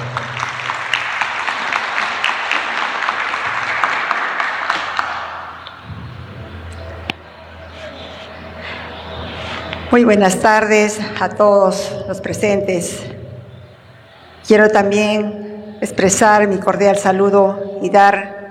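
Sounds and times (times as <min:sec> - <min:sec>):
crowd applauding with dense steady clapping: 0:00.0 - 0:05.9
low room murmur: 0:00.0 - 0:18.4
speech: 0:09.9 - 0:13.2, 0:14.5 - 0:18.4.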